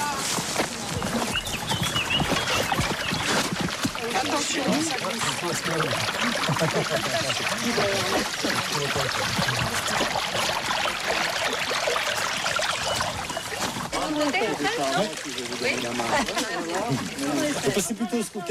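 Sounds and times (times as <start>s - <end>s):
flowing stream water: 0.0s - 18.4s
laughter: 4.3s - 9.3s, 14.4s - 17.8s
speech: 4.8s - 10.6s, 14.2s - 18.4s.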